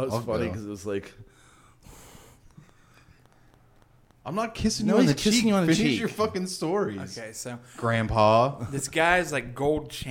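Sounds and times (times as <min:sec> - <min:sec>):
speech: 0:00.0 - 0:01.4, 0:04.2 - 0:10.0
heavy breathing into a microphone: 0:01.2 - 0:03.6.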